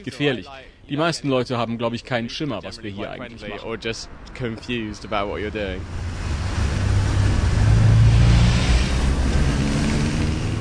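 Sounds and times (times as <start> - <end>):
speech: 0.0 - 6.1
evening city traffic roar in London: 2.7 - 10.5
car passing by: 4.1 - 10.5.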